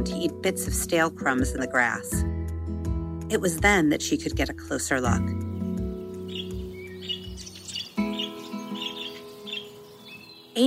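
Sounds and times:
speech: 0.0s - 2.3s, 3.3s - 5.4s
birds chirping in a garden: 5.1s - 10.6s.

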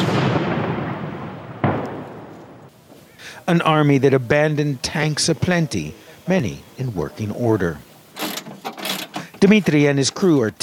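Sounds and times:
outgoing artillery fire during fighting against Russian forces: 0.0s - 2.7s
speech: 3.4s - 7.9s, 9.4s - 10.6s.

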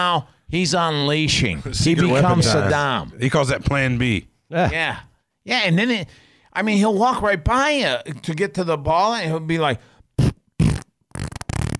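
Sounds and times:
speech: 0.0s - 9.9s
vocal imitation of a fart: 10.2s - 11.7s.

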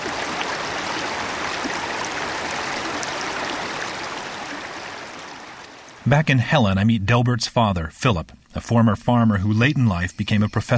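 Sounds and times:
mountain stream rushing over rocks: 0.0s - 6.1s
speech: 6.1s - 10.7s.

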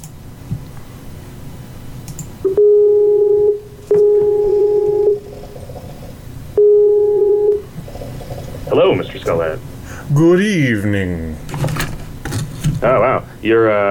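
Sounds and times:
faint low hum: 0.0s - 13.8s
Skype call ringing tones as electronic beeps: 2.5s - 5.3s, 6.6s - 7.6s
speech: 10.2s - 11.3s, 12.9s - 13.8s.

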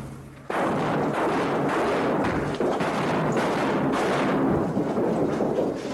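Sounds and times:
flashbangs detonating: 0.5s - 5.9s
wall toppling over with crashing debris: 0.5s - 5.9s.

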